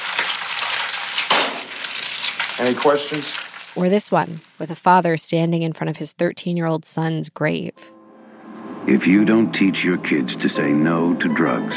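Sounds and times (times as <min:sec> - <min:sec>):
egg frying in a frying pan: 0:00.0 - 0:04.6
speech: 0:02.6 - 0:08.0, 0:08.8 - 0:11.7.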